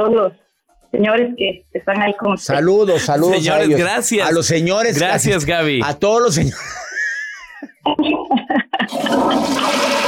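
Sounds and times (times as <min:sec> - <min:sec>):
speech: 0:00.0 - 0:06.9, 0:07.6 - 0:10.0
laughter: 0:06.4 - 0:09.3
toilet flush sound effect: 0:08.9 - 0:10.0.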